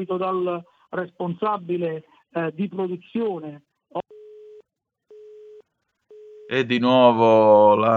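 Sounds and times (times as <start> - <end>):
speech: 0.0 - 3.7, 6.5 - 7.9
telephone busy tone from a dropped call on a failing phone network: 4.0 - 6.5.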